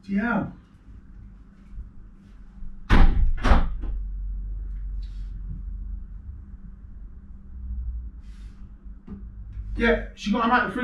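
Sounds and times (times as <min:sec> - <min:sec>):
speech: 0:00.0 - 0:00.6, 0:09.8 - 0:10.8
low room hum: 0:00.0 - 0:10.8
door slamming shut: 0:02.9 - 0:04.0.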